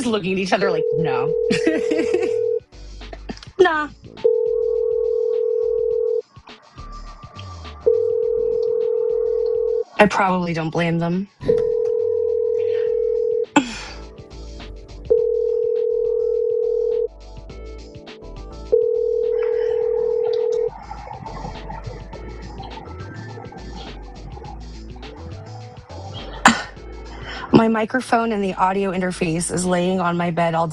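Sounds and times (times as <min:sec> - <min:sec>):
speech: 0:00.0 - 0:02.5, 0:03.6 - 0:04.4, 0:10.0 - 0:11.6, 0:27.7 - 0:30.7
electronic phone line ring tones, unanswered call: 0:00.6 - 0:02.6, 0:04.2 - 0:06.2, 0:07.8 - 0:10.0, 0:11.5 - 0:13.6, 0:15.1 - 0:17.1, 0:18.7 - 0:24.2
laughter: 0:01.5 - 0:02.5, 0:19.5 - 0:26.7.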